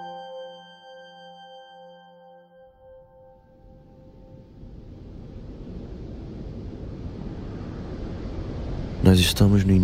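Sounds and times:
soft steady wind on a beach: 0:03.0 - 0:09.8
calm sea washing on a beach: 0:03.4 - 0:09.8
speech: 0:09.1 - 0:09.8.

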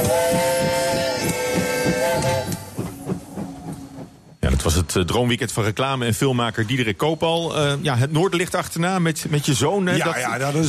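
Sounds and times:
Trans-Siberian train horn blast in Moscow: 0:00.0 - 0:03.0
Trans-Siberian train chugging departing from the station in Moscow: 0:00.0 - 0:05.2
speech: 0:04.6 - 0:10.6.

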